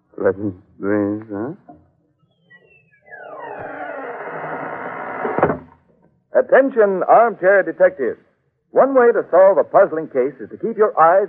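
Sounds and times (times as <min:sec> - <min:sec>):
speech: 0:00.2 - 0:01.8, 0:06.4 - 0:11.2
creaking door swinging slowly shut: 0:02.5 - 0:05.8
solid thump of door closing: 0:05.2 - 0:05.8.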